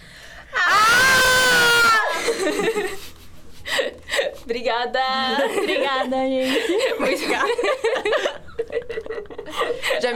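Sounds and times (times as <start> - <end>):
several women screaming in unison as scream therapy: 0.5 - 2.2
people laughing and chuckling: 2.1 - 4.3, 5.3 - 10.1
speech: 4.6 - 8.3, 9.7 - 10.1.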